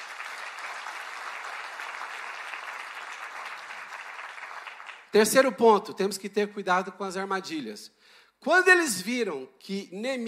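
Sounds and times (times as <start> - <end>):
audience applauding: 0.0 - 5.2
speech: 5.1 - 10.2.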